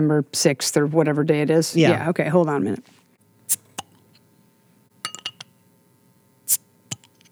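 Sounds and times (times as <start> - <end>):
speech: 0.0 - 3.6
glass clinks of a bottle of Oktoberfest beer being opened: 5.0 - 5.4.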